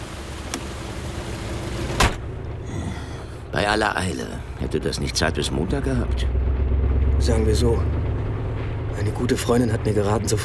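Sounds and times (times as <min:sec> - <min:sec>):
running car engine low rumble: 0:00.0 - 0:10.4
car door slamming: 0:01.9 - 0:02.3
speech: 0:03.5 - 0:06.6, 0:07.2 - 0:08.0, 0:09.0 - 0:10.4.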